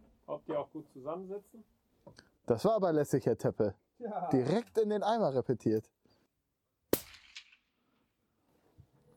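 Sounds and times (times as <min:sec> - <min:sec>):
speech: 0:00.4 - 0:06.0
rifle shot fired with a suppressor: 0:06.9 - 0:08.0.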